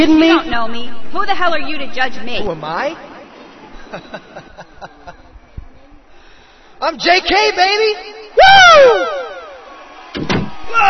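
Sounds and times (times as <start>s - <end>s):
speech: 0.0s - 3.1s, 3.9s - 5.0s, 6.8s - 9.2s, 10.1s - 10.8s
laughter: 3.5s - 5.5s
single door slamming shut with a heavy booming thud: 10.1s - 10.6s.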